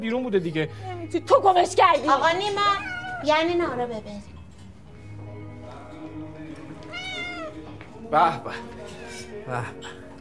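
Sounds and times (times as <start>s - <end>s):
speech: 0.0s - 4.4s, 8.1s - 8.8s, 9.5s - 10.0s
sick cat meowing: 2.5s - 3.4s, 6.8s - 7.6s.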